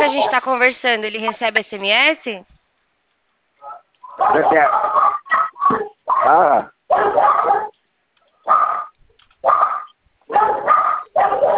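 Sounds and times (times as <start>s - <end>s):
speech: 0.0s - 2.6s, 4.2s - 7.7s
two dogs at a house barking loudly: 3.6s - 7.8s, 8.4s - 11.5s.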